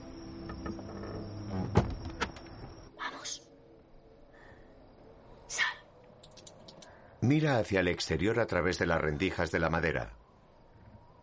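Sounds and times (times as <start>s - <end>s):
wooden latrine door creaking: 0.4s - 2.8s
wooden latrine door knocking shut: 0.5s - 2.4s
speech: 7.2s - 10.2s.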